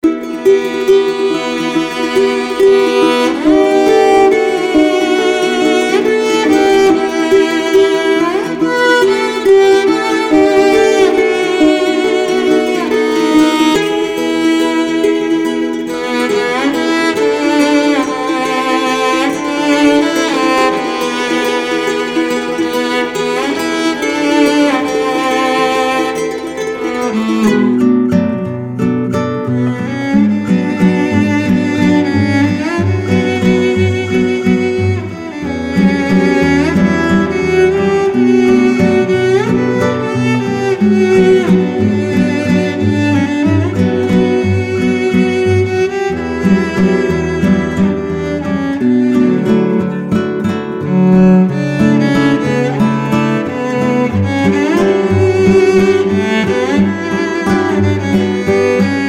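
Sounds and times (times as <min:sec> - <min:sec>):
chilled cello: 0:00.0 - 0:59.0
guitar: 0:00.0 - 0:59.0.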